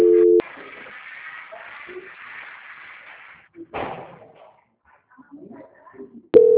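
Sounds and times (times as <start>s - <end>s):
telephone ringback tones: 0.0s - 0.4s, 6.4s - 6.5s
thump: 3.7s - 4.5s.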